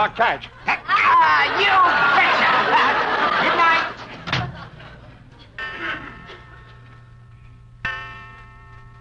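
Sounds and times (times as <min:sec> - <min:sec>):
speech: 0:00.0 - 0:00.6, 0:01.2 - 0:03.9
laughter: 0:00.4 - 0:07.0
clock chiming midnight: 0:05.5 - 0:08.9.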